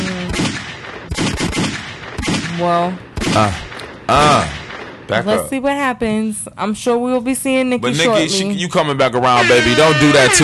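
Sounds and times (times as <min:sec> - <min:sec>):
gunshot sound effects: 0:00.0 - 0:05.2
speech: 0:02.6 - 0:10.4.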